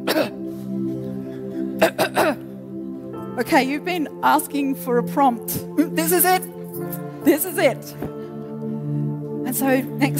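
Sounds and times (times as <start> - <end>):
person coughing throatily: 0.0 - 0.5, 1.3 - 2.5
speech: 3.4 - 6.5, 7.2 - 8.1, 9.5 - 10.1.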